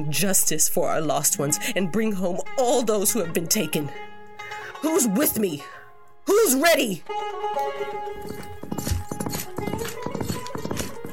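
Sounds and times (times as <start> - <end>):
speech: 0.0 - 4.1, 4.8 - 8.9
horses riding out, hooves clip-clopping: 8.0 - 11.1.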